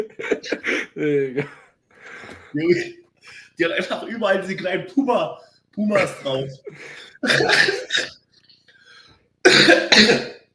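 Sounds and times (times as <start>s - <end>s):
laughter: 0.0s - 1.6s, 6.0s - 8.2s
speech: 0.0s - 1.6s, 2.5s - 8.1s, 10.0s - 10.3s
person having a loud coughing fit: 7.2s - 8.2s, 9.5s - 10.5s.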